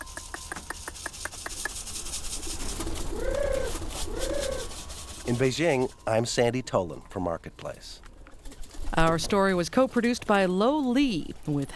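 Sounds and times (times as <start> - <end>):
pigeons cooing at a coop: 0.1 - 5.9
speech: 5.3 - 8.1, 9.0 - 11.7.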